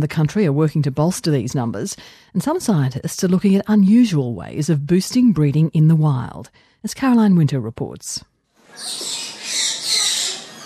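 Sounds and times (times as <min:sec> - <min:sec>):
speech: 0:00.0 - 0:09.2
orange-bellied parrots chirping in a zoo breeding enclosure: 0:08.6 - 0:10.6.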